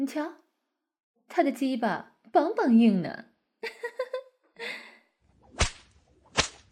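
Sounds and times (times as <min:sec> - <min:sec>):
speech: 0:00.0 - 0:00.4, 0:01.3 - 0:04.8
whip cracks: 0:05.5 - 0:06.7.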